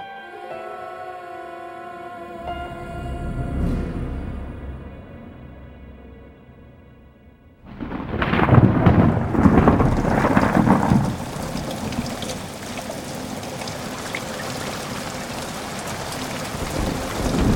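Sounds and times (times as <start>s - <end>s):
low sustained tone: 0.0s - 7.6s
heavy downpour of cold rain pattering on rooftops: 7.7s - 17.5s.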